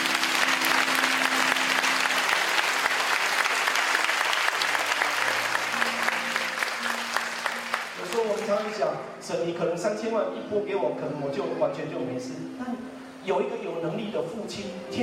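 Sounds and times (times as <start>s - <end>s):
large audience applauding: 0.0s - 8.8s
speech: 8.6s - 15.0s.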